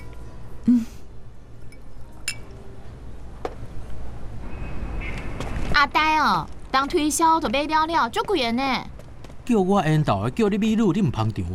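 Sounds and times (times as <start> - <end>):
speech: 0.7 - 0.9, 5.8 - 8.9, 9.5 - 11.5
glasses clinking in a toast: 1.6 - 2.6.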